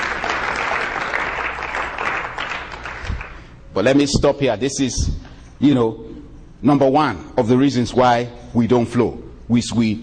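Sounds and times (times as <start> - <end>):
large church audience applauding during a sermon: 0.0 - 3.5
speech: 3.8 - 10.0.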